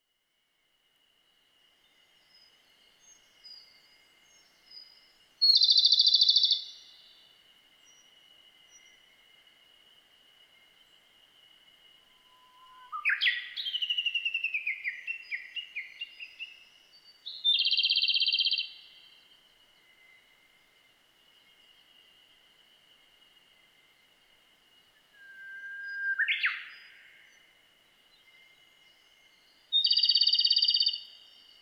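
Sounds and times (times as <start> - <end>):
komadori singing: 4.4 - 7.2, 12.2 - 19.1, 25.2 - 27.4, 29.7 - 31.6.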